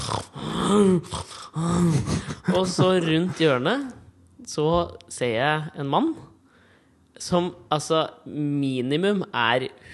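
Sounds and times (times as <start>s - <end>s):
voice imitating snoring or snorting breaths coming up a hallway: 0.0s - 2.2s
speech: 0.1s - 6.3s, 7.2s - 9.9s.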